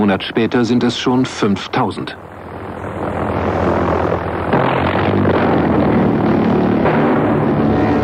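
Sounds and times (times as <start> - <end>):
speech: 0.0 - 2.3
V1 flying bomb pulsejet engine droning in flight: 0.0 - 8.0.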